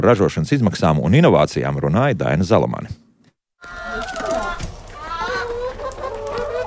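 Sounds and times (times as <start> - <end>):
speech: 0.0 - 3.0
flock of hens clucking and squawking on a small family farm in Latvia: 3.6 - 6.6.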